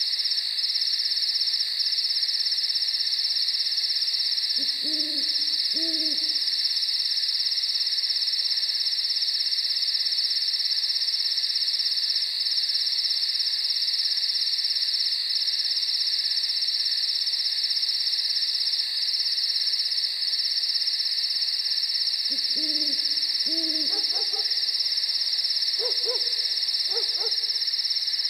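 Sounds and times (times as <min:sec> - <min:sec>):
chorus of high-pitched crickets at night: 0:00.0 - 0:28.2
owl hooting at night: 0:04.6 - 0:06.7, 0:22.3 - 0:24.8, 0:25.8 - 0:27.6.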